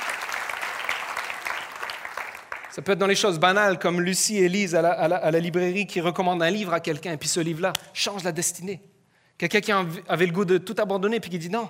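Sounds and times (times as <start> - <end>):
congregation applauding: 0.0 - 3.2
speech: 2.8 - 11.6.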